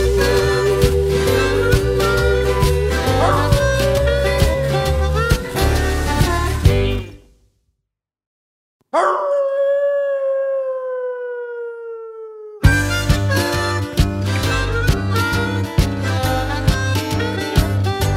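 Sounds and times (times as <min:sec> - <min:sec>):
busy rhythmic blues band: 0:00.0 - 0:07.1, 0:12.7 - 0:18.1
thumping bass: 0:00.0 - 0:07.1, 0:12.7 - 0:18.1
bloodhound-like howl and yips: 0:02.9 - 0:05.4, 0:09.0 - 0:12.8.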